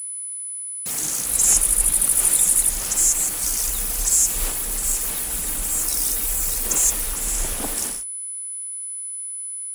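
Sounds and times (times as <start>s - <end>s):
crickets chirping on a warm summer night: 0.9s - 8.0s.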